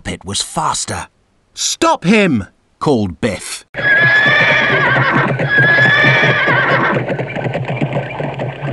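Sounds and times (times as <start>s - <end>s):
speech: 0.1s - 4.3s, 5.0s - 7.7s
hooves clip-clopping: 3.8s - 8.7s
horse neighing: 3.8s - 8.7s.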